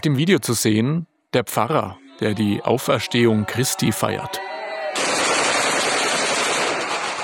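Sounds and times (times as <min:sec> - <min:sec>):
speech: 0:00.0 - 0:04.5
celebratory gunshots fired into the air: 0:05.0 - 0:07.2.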